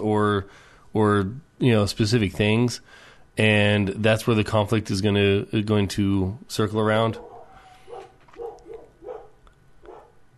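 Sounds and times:
speech: 0:00.0 - 0:07.3
low hum: 0:00.0 - 0:10.3
dogs barking with sharp woofs: 0:07.2 - 0:10.3.

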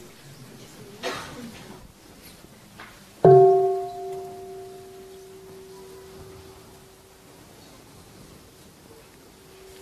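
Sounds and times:
meditation bell struck and ringing: 0:03.3 - 0:06.7.

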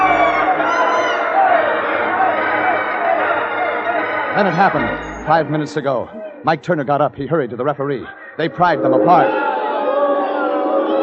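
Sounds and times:
shouts and whoops from wrestling crowd: 0:00.0 - 0:04.3, 0:08.9 - 0:11.0
large arena crowd at a wrestling match roaring and screaming: 0:00.0 - 0:05.3, 0:08.4 - 0:11.0
speech: 0:04.4 - 0:09.4.

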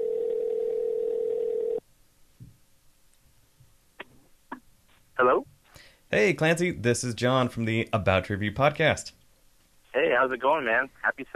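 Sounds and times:
buzzy phone line ring tone on an outgoing call: 0:00.0 - 0:01.8
speech: 0:05.2 - 0:05.5, 0:06.1 - 0:09.2, 0:10.2 - 0:11.3.

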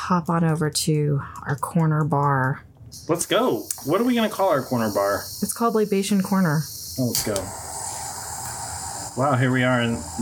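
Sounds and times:
speech: 0:00.1 - 0:07.7, 0:09.2 - 0:10.2
cannabis concentrate dab vaporizing hiss: 0:03.0 - 0:10.2.

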